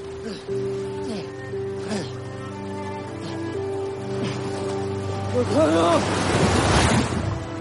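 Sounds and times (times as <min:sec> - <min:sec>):
ocean waves rising in size: 0:00.0 - 0:07.5
sustained tonal music: 0:00.0 - 0:07.5.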